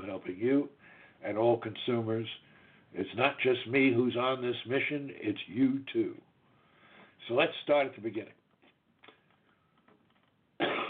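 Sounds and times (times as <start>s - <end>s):
speech: 0.1s - 6.3s, 7.2s - 8.4s
breathing: 0.8s - 1.2s, 2.4s - 3.0s, 6.4s - 7.2s
person coughing: 10.6s - 10.8s.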